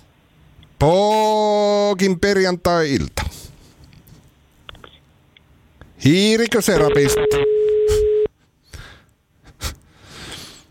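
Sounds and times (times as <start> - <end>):
speech: 0.8 - 3.2, 6.0 - 7.6
steady telephone line tone from a call: 6.8 - 8.3
soft breathy exhale: 9.9 - 10.7.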